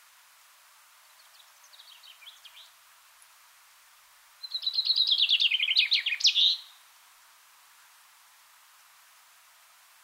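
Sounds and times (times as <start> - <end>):
Common chaffinch Fringilla coelebs song: 1.0 - 2.8, 4.4 - 6.8.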